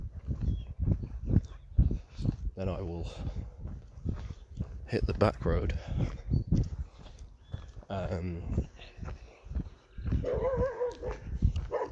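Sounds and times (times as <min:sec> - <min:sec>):
footsteps: 0:00.0 - 0:11.9
speech: 0:02.6 - 0:03.5, 0:04.9 - 0:06.7, 0:07.9 - 0:08.8
dog barking and yelping: 0:10.2 - 0:11.9.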